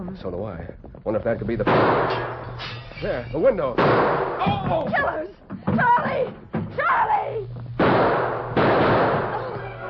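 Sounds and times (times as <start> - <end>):
speech: 0.1 - 7.5
gunshots: 1.7 - 2.6, 3.8 - 4.5, 7.8 - 9.6.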